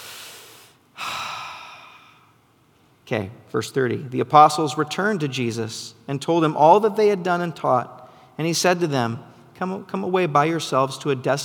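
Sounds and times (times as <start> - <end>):
deep human breath inhaling and exhaling: 0.0 - 2.4
speech: 3.1 - 11.4.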